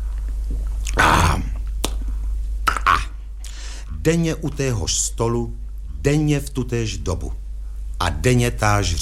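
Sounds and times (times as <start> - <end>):
loud wet lip smack after a drink: 0.5 - 3.6
sharp mouth clicks: 0.8 - 4.0
speech: 4.0 - 7.4, 8.0 - 9.0.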